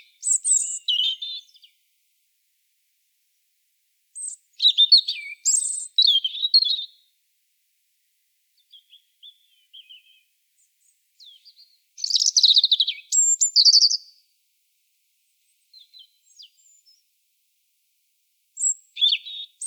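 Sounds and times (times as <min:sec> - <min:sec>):
European robin Erithacus rubecula singing: 0:00.0 - 0:01.8, 0:04.2 - 0:07.1, 0:08.6 - 0:14.2, 0:15.5 - 0:17.1, 0:18.6 - 0:19.6.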